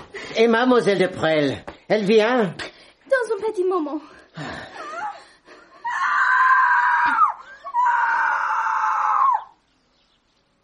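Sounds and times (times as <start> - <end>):
speech: 0.4 - 2.6, 3.3 - 4.7
woman screaming with long high-pitched wails: 5.8 - 9.6.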